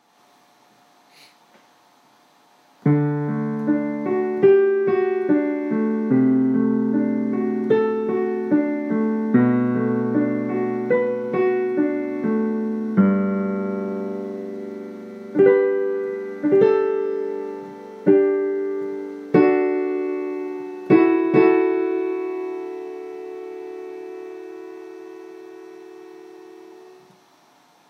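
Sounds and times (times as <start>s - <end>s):
piano melody: 2.8s - 27.1s.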